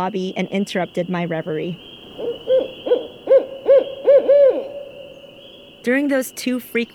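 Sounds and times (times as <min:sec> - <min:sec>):
speech: 0:00.0 - 0:01.9, 0:05.8 - 0:06.9
barred owl caterwauling call echoing through a lobby: 0:01.7 - 0:05.8.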